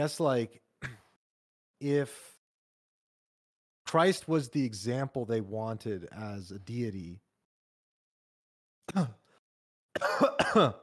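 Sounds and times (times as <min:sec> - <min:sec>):
speech: 0:00.0 - 0:00.6, 0:01.8 - 0:02.3, 0:03.9 - 0:07.2, 0:08.9 - 0:09.2, 0:10.0 - 0:10.8
person coughing: 0:08.9 - 0:09.2, 0:10.0 - 0:10.8.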